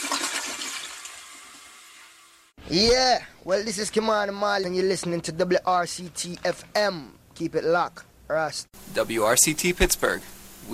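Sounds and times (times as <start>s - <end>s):
toilet flushing with swirling water draining away: 0.0s - 2.5s
speech: 2.7s - 10.7s.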